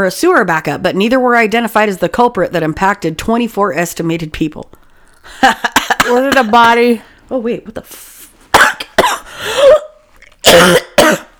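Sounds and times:
speech: 0.0s - 9.8s, 10.4s - 11.3s
person coughing harshly: 5.4s - 6.8s, 8.5s - 11.3s
throat clearing: 8.6s - 11.3s.

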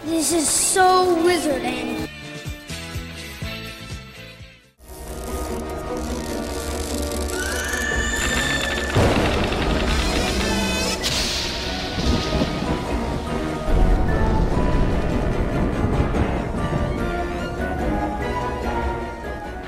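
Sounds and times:
speech: 0.0s - 2.2s
horror TV series orchestral theme music: 1.3s - 19.6s
sharp rising whinny-like glide: 5.0s - 15.3s
rumbling thunder: 8.8s - 19.4s
rain-like hiss: 11.0s - 14.1s.

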